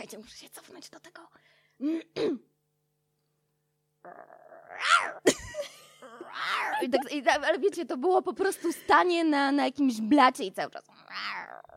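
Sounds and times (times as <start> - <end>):
speech: 0.0 - 2.5, 4.0 - 5.4, 6.4 - 11.7
person imitating a lion cub's roar: 4.0 - 5.3, 6.0 - 6.9.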